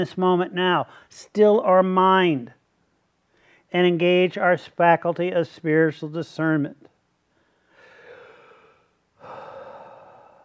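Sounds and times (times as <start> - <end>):
speech: 0.0 - 2.6, 3.7 - 6.9
deep breath in during a guided meditation: 3.3 - 3.7, 7.3 - 10.4.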